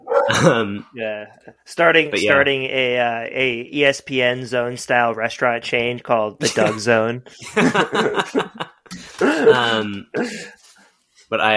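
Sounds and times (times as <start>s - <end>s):
dog barking and growling: 0.0s - 0.6s
laughter: 0.3s - 0.8s, 6.4s - 10.4s
speech: 0.3s - 10.6s, 11.3s - 11.5s.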